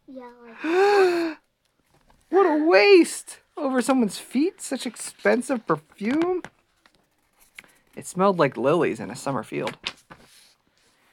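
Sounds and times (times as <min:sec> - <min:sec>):
speech: 0:00.1 - 0:00.9, 0:02.4 - 0:06.6, 0:08.0 - 0:10.0
person performing a theatrical gasp: 0:00.4 - 0:01.5.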